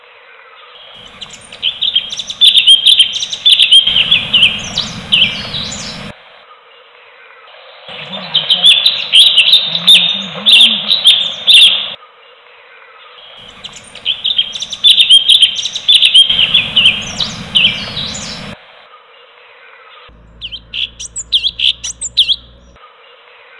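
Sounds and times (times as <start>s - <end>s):
bulbul singing: 1.0s - 6.1s, 7.9s - 12.0s, 13.4s - 18.6s, 20.1s - 22.8s.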